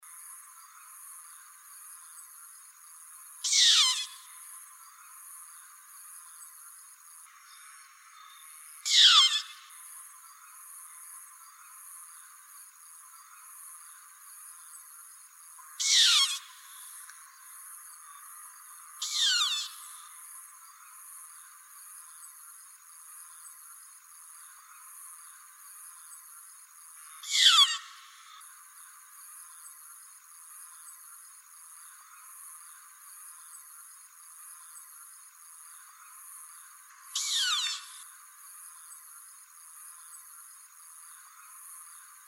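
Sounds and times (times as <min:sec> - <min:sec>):
short-eared owl song: 0:03.4 - 0:04.2, 0:08.8 - 0:09.6, 0:15.8 - 0:16.5, 0:19.0 - 0:19.8, 0:27.2 - 0:28.0, 0:37.2 - 0:38.0.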